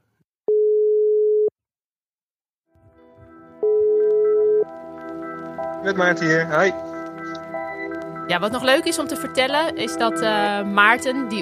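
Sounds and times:
telephone ringback tone while placing a call: 0.5 - 1.5, 3.6 - 4.7
busy background of music-like sound: 2.8 - 11.4
speech: 5.8 - 6.9, 8.3 - 11.4.

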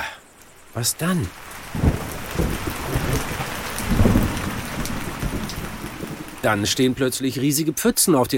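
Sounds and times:
heavy rain pouring: 0.0 - 8.3
speech: 0.8 - 3.0, 6.4 - 8.3.

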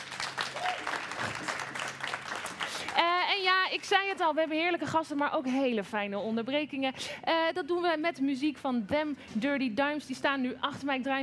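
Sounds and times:
crowd applauding: 0.0 - 3.1
speech: 3.7 - 11.2.

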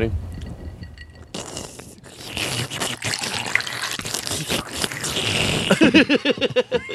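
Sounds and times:
speech: 0.0 - 0.2, 5.9 - 6.9
drink pouring into a glass: 1.3 - 5.1
person humming: 1.4 - 6.1
laughter: 5.7 - 6.9.

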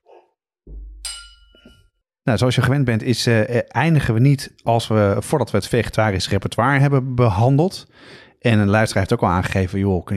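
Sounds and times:
glasses clinking in a toast: 1.0 - 1.9
speech: 2.3 - 10.1.

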